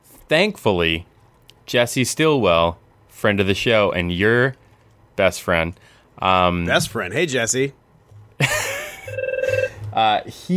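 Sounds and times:
speech: 0.3s - 1.1s, 1.7s - 4.6s, 5.2s - 7.8s, 10.0s - 10.5s
telephone ringing with an incoming call: 8.8s - 9.8s.

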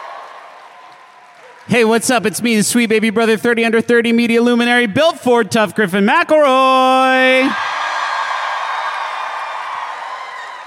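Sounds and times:
live crowd cheering with scattered whoops: 0.0s - 1.7s, 7.6s - 10.6s
live crowd applauding: 0.0s - 3.0s, 7.0s - 10.6s
speech: 1.6s - 7.7s.

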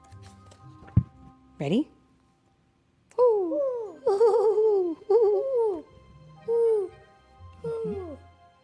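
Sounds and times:
speech: 1.6s - 2.0s
huge owl hooting: 3.2s - 8.2s.

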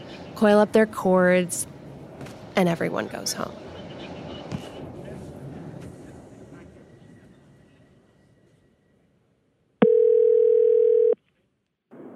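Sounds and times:
speech: 0.4s - 1.7s, 2.6s - 3.6s
telephone ringback tone on the line: 9.8s - 11.2s.

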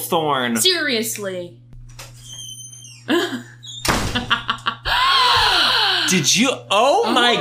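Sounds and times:
speech: 0.1s - 1.6s, 6.1s - 7.3s
laughter: 3.1s - 6.0s
door slamming shut: 3.8s - 4.5s.

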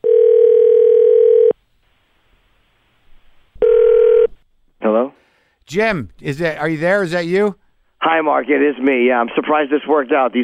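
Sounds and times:
telephone line tone from placing a call: 0.0s - 1.5s, 3.6s - 4.3s
speech: 5.7s - 10.4s.

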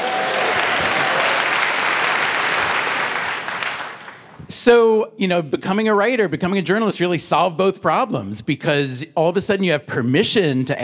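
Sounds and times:
crowd applauding for journalism: 0.0s - 4.4s
speech: 4.7s - 10.8s.

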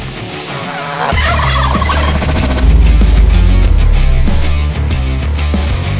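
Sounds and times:
turkeys gobbling: 0.7s - 2.6s
heavy low rumble: 1.7s - 5.9s.

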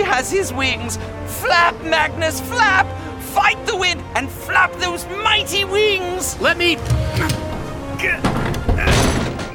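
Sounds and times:
speech: 0.1s - 9.0s
heavy bang: 6.8s - 9.5s
window slamming shut: 6.8s - 9.5s.

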